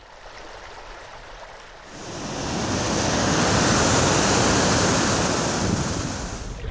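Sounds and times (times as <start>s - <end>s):
fast-flowing water rushing in stream riffle and river rapids: 1.9s - 6.6s.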